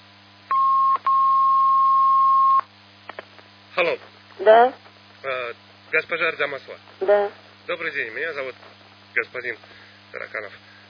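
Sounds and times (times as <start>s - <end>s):
telephone line connecting beeps: 0.5s - 2.7s
speech: 3.8s - 10.7s.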